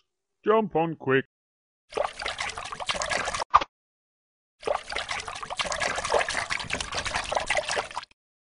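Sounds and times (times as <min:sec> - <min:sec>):
speech: 0:00.4 - 0:01.3
water sloshing and splashing as animals swim across a river: 0:01.9 - 0:03.5, 0:04.6 - 0:08.2.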